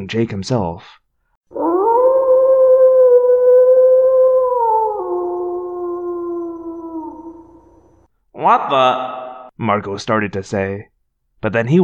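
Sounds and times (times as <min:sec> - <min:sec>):
speech: 0:00.0 - 0:01.0, 0:08.4 - 0:11.8
wolves howling: 0:01.5 - 0:08.0.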